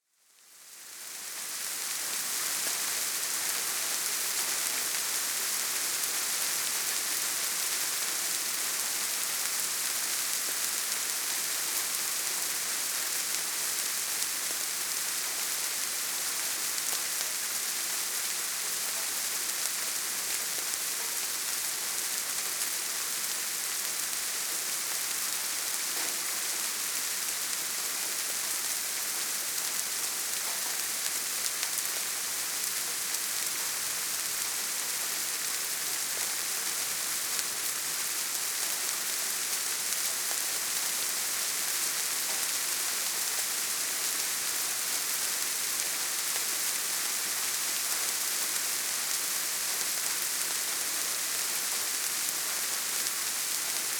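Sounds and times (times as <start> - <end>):
calm rain ambience: 0.1 - 53.9.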